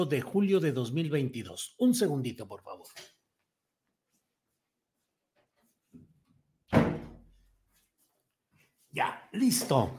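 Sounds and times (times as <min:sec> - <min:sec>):
speech: 0:00.0 - 0:03.1, 0:09.0 - 0:09.9
door shutting: 0:06.7 - 0:07.3.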